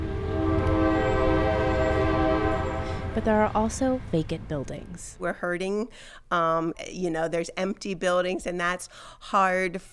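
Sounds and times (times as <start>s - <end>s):
train horn blast in downtown Coshocton Ohio: 0.0s - 3.6s
low rumble of rolling train cars: 0.0s - 5.7s
speech: 3.2s - 9.9s.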